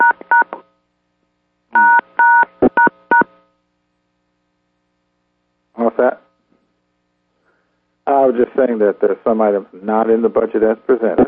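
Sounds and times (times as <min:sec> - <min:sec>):
phone keypad DTMF dual-tone beeps: 0:01.8 - 0:03.3
speech: 0:08.3 - 0:11.2.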